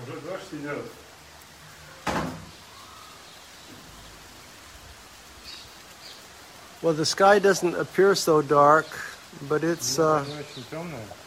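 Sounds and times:
rain falling outdoors: 0.0 - 11.2
speech: 0.1 - 1.1, 6.8 - 11.2
sharp knock of a door or latch: 2.0 - 2.5.

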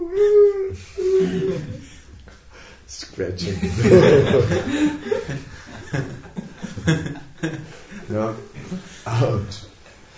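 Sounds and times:
person's voice imitating a whimpering dog: 0.0 - 1.8
laughter: 1.0 - 2.0, 3.4 - 9.0
speech: 3.2 - 6.1.

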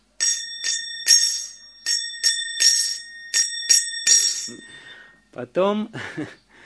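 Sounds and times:
kartal hand cymbals clinking: 0.0 - 5.2.

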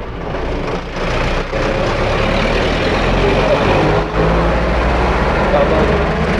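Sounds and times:
loud continuous roar of road traffic with cars and heavy trucks: 0.0 - 6.3.

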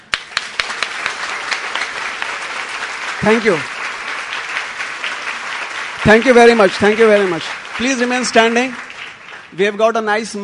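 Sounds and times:
audience clapping: 0.0 - 10.4
speech: 3.2 - 3.8, 6.1 - 8.8, 9.5 - 10.4.

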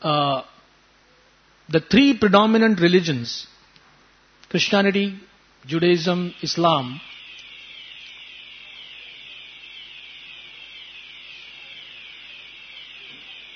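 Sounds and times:
speech: 0.0 - 0.5, 1.7 - 3.6, 4.5 - 7.2
fire alarm sounding with a shrill electronic sweeping tone: 5.8 - 13.5.

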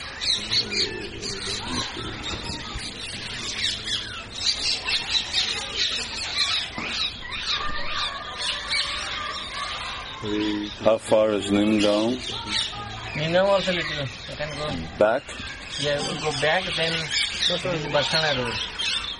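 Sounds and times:
flock of parrots squawking and chattering: 0.0 - 19.1
speech: 0.7 - 3.0, 10.2 - 18.7.

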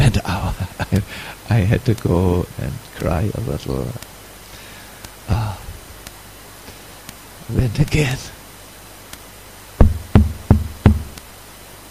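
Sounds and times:
speech: 1.0 - 4.1, 7.5 - 8.4
firm knocks on a wooden door: 9.8 - 11.2.

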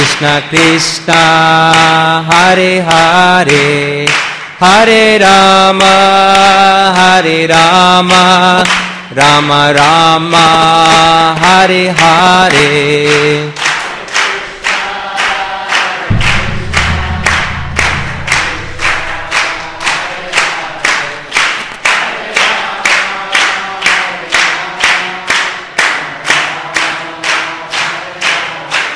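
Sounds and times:
group clapping during devotional chanting: 0.0 - 28.9
speech: 0.2 - 13.6
voices devotional chanting: 13.6 - 28.9
low rumbling beat: 16.0 - 21.5.

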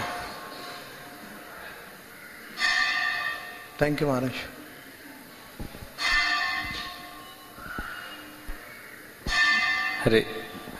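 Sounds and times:
bells ringing with resonant strikes: 2.6 - 3.9, 6.0 - 7.5, 9.3 - 10.6
speech: 3.8 - 4.6, 10.0 - 10.7.

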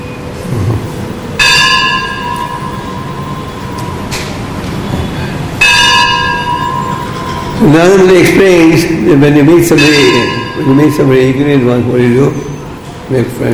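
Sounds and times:
resonant bell ringing: 1.4 - 4.5, 5.6 - 12.9
speech: 7.6 - 12.5, 13.1 - 13.5.

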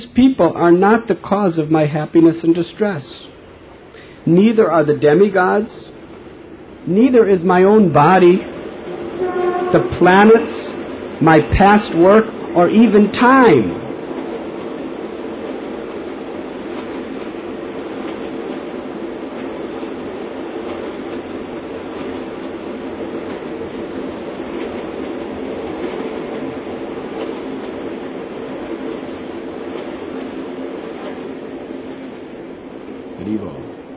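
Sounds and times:
train running on railway tracks in India: 0.0 - 33.9
speech: 0.2 - 3.3, 4.2 - 6.0, 6.8 - 8.6, 9.3 - 13.8.

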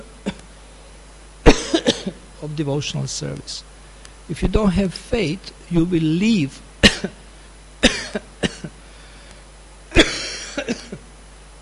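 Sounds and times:
person coughing from incense smoke: 1.5 - 2.2, 6.8 - 7.2, 7.8 - 8.8, 9.9 - 11.0
speech: 2.4 - 7.2.

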